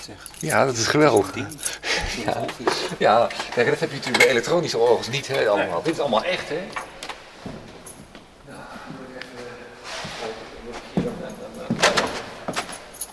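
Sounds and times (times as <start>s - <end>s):
bunch of keys jangling to unlock a hatch: 0.0s - 3.2s, 6.7s - 7.1s, 7.8s - 8.7s, 11.0s - 13.1s
soft handling noises: 0.0s - 4.4s, 5.3s - 13.1s
speech: 0.0s - 7.6s.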